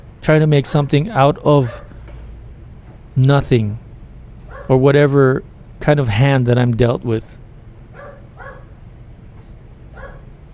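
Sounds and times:
speech: 0.2 - 1.8, 3.2 - 3.8, 4.7 - 7.4
dog barking: 1.7 - 2.0, 4.5 - 4.8, 8.0 - 8.8, 9.9 - 10.3.

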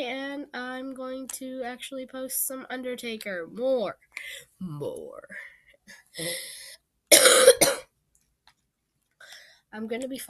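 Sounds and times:
speech: 1.0 - 7.8, 9.7 - 10.2
person coughing harshly: 7.1 - 7.9.

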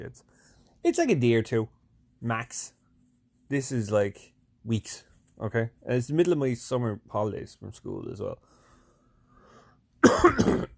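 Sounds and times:
speech: 0.0 - 2.8, 3.5 - 8.5, 10.0 - 10.7
person coughing: 10.0 - 10.7.

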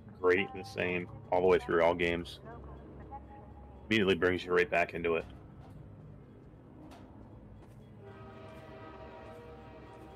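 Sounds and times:
train rumbling with a low clattering drone: 0.0 - 10.1
speech: 0.2 - 2.7, 3.9 - 5.4
sustained horn-like tone: 8.0 - 10.1.

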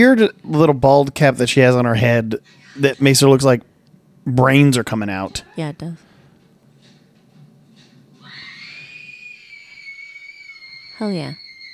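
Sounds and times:
speech: 0.0 - 6.1, 11.0 - 11.4
woman screaming in a film clip: 8.2 - 11.7.

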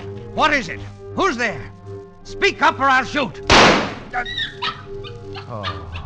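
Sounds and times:
speech: 0.4 - 6.0
dog whimpering and whining: 4.2 - 6.0
dog barking: 4.4 - 6.0.

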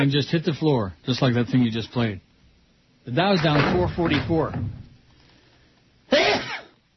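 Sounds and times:
speech: 0.0 - 2.3, 3.1 - 4.8
sneeze: 6.1 - 6.8.

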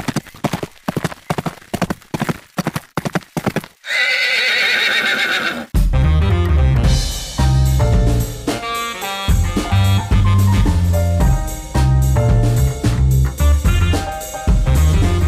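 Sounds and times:
horse hooves clip-clopping: 0.0 - 5.7
horse neighing: 3.8 - 5.8
music: 5.8 - 15.2.

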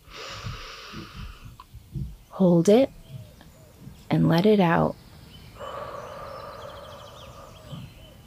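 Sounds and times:
slow deep inhale taken to relax: 0.0 - 1.6, 5.6 - 8.2
soft low thumps: 0.0 - 8.2
speech: 2.4 - 3.0, 4.1 - 5.0.

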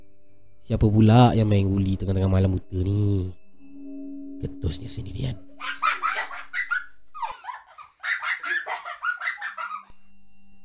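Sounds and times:
speech: 0.7 - 3.4, 4.4 - 5.8
children giggling in high-pitched bursts: 5.5 - 9.9.

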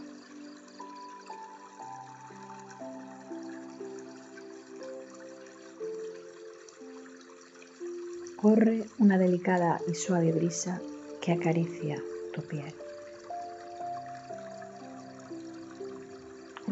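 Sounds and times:
gently flowing water at a shore: 0.0 - 16.7
speech: 8.4 - 12.8.

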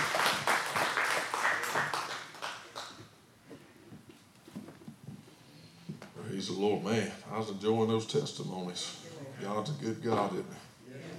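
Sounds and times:
audience clapping hands in praise: 0.0 - 3.1
faint noise: 0.0 - 11.1
speech: 6.4 - 10.7.

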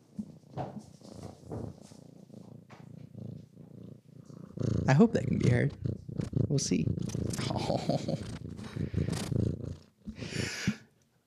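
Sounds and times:
cat purring: 0.0 - 10.8
speech: 4.9 - 5.9, 6.5 - 8.4
laughter: 7.4 - 8.3.

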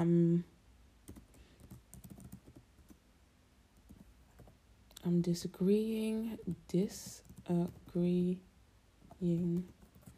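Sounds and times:
speech: 0.0 - 0.5, 5.0 - 8.5, 9.2 - 9.8
typing on a computer keyboard: 1.1 - 3.0, 7.1 - 8.0, 9.1 - 10.1.

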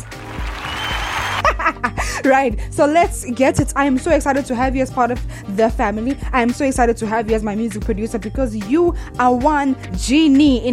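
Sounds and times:
hand clapping from a few people: 0.0 - 1.5
people laughing and whooping: 0.5 - 1.9
speech: 1.7 - 10.7.

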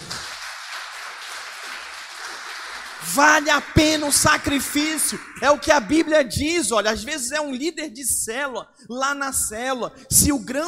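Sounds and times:
audience applauding: 0.0 - 5.9
speech: 3.0 - 10.6.

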